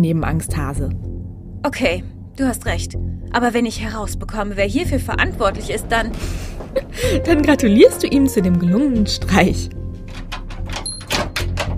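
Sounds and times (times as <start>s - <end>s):
speech: 0.0s - 9.8s
low hum: 0.0s - 10.4s
heavy cellar door scraping open without creaking: 4.9s - 8.7s.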